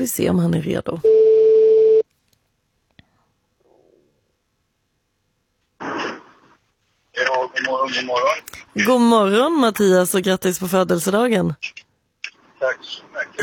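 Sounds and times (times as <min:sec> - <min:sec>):
speech: 0:00.0 - 0:01.2, 0:07.7 - 0:11.8, 0:12.6 - 0:13.4
outgoing phone call ringing tone in a car: 0:01.0 - 0:02.0
voices talking over the phone line: 0:07.2 - 0:13.4.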